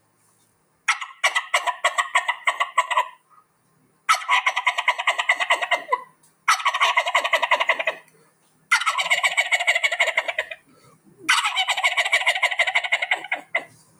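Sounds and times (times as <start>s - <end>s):
human voice imitating a turkey gobble: 0.9s - 3.2s, 4.1s - 8.1s, 8.7s - 13.8s.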